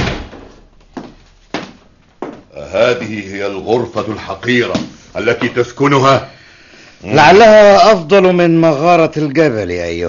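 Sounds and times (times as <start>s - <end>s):
door being closed: 0.0s - 0.6s
speech: 2.6s - 6.4s, 7.0s - 10.0s.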